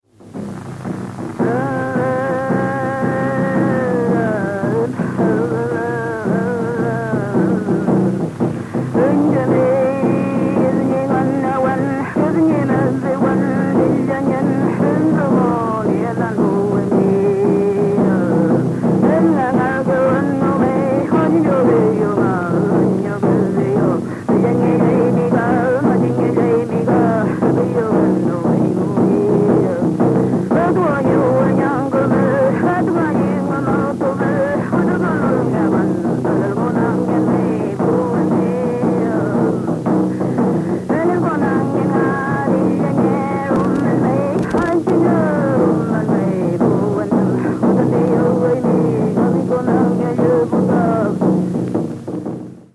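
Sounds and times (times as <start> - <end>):
kultrún drum beating: 0.0 - 52.7
machi chanting in Collico, Puerto Saavedra, Chile: 1.4 - 51.4.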